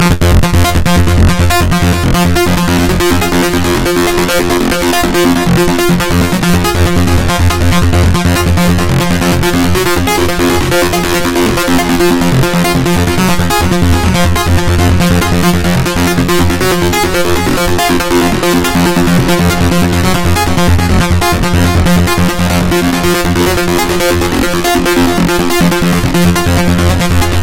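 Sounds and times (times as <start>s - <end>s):
sawtooth synth bass: 0.0s - 27.4s.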